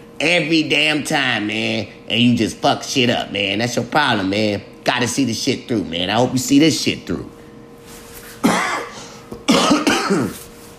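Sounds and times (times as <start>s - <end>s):
speech: 0.2s - 7.4s
throat clearing: 8.4s - 10.4s
harsh throaty coughing: 8.4s - 10.5s.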